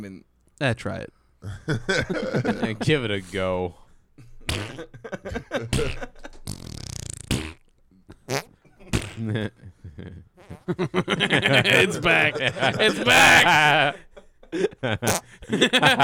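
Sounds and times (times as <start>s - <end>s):
speech: 0.0s - 6.4s, 9.2s - 16.0s
laughter: 1.4s - 2.8s, 4.8s - 6.4s, 8.7s - 16.0s
person imitating farts with wet raspberry bursts: 4.5s - 4.8s, 5.7s - 7.6s, 8.3s - 9.2s, 10.4s - 10.7s, 11.6s - 11.9s, 13.1s - 13.9s
quick chatter: 13.0s - 14.0s.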